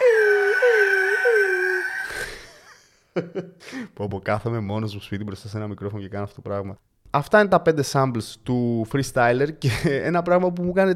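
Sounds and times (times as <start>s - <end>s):
voice imitating an eagle's cry as a song sample: 0.0s - 2.4s
speech: 3.2s - 10.9s.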